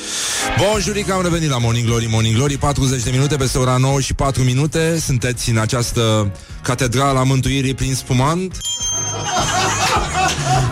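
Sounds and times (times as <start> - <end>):
speech: 0.5 - 10.4
small hand bell ringing: 8.6 - 9.3
people talking and laughing: 9.0 - 10.7.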